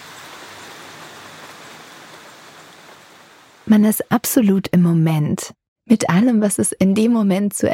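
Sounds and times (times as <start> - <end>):
steady rain falling at a retreat: 0.0 - 3.7
speech: 3.7 - 7.7.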